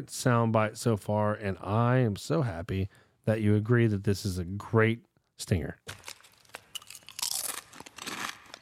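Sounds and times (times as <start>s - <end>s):
speech: 0.0s - 6.1s
food being eaten with crisp crunching and chewing: 5.9s - 8.6s.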